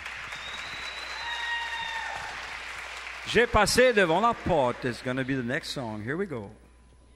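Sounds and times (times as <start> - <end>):
audience applause after boys performing French music: 0.0 - 5.5
speech: 3.3 - 6.6.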